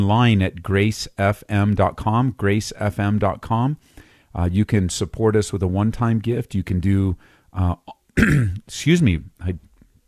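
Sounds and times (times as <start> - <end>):
speech: 0.0 - 9.7
throat clearing: 7.9 - 8.7.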